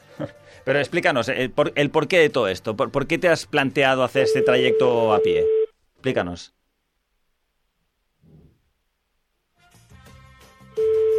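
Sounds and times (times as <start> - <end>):
speech: 0.2 - 6.6
telephone ringback tone while calling a number: 4.3 - 5.7, 10.8 - 11.1.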